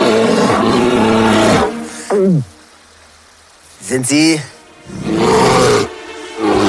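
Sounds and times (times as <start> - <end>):
bear roaring threateningly: 0.0 - 2.5, 4.8 - 6.6
speech: 3.9 - 5.6.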